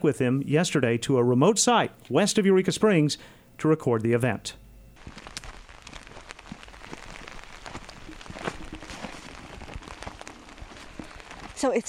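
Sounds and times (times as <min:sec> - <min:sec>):
speech: 0:00.0 - 0:05.3, 0:11.6 - 0:11.8
steady rain pattering in a wooded hollow west of Eureka Springs: 0:05.0 - 0:11.8.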